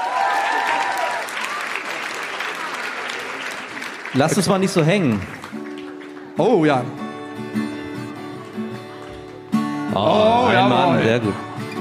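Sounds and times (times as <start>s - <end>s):
faint cheering or voices: 0.0s - 3.4s
audience applause: 0.0s - 11.7s
speech: 4.1s - 5.4s, 6.4s - 7.0s, 10.0s - 11.5s.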